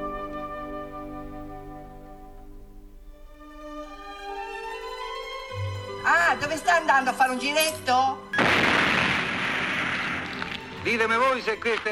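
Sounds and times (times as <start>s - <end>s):
speech: 6.4s - 8.5s, 10.8s - 11.9s
cannon shot signalling curfew: 8.4s - 10.7s.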